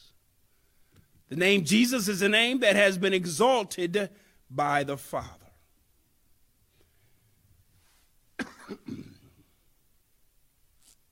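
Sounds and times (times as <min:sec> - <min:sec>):
speech: 0:01.3 - 0:05.4
harsh coughing fit: 0:08.4 - 0:09.5.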